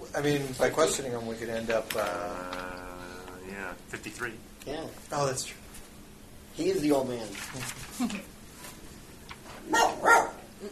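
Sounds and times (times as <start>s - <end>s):
faint noise: 0.0s - 10.7s
speech: 0.2s - 2.8s, 3.5s - 5.6s, 6.6s - 8.3s
dog barking: 9.7s - 10.5s.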